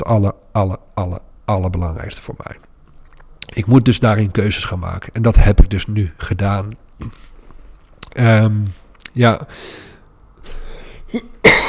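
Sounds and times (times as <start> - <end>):
speech: 0.0 - 2.7, 3.5 - 7.3, 8.1 - 9.9, 11.1 - 11.6
person coughing: 11.1 - 11.6.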